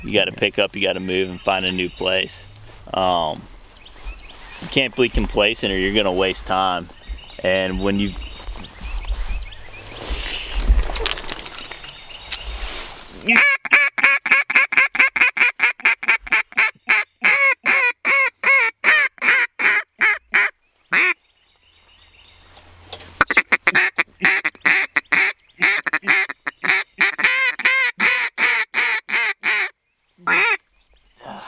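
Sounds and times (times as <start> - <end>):
speech: 0.0 - 3.5, 4.6 - 8.3, 13.2 - 14.2
large flock of ducks quacking during a public-land hunt: 0.0 - 10.6, 13.2 - 21.2, 23.2 - 30.6
large flock of geese honking during a public-land hunt: 0.0 - 10.6, 13.2 - 21.2, 23.1 - 30.6
low rumbling noise: 0.0 - 13.2.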